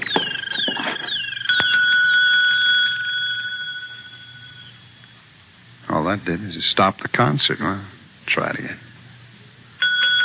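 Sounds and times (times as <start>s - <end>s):
desk bell struck rapidly: 0.2s - 5.1s, 9.8s - 10.2s
speech: 6.1s - 8.8s.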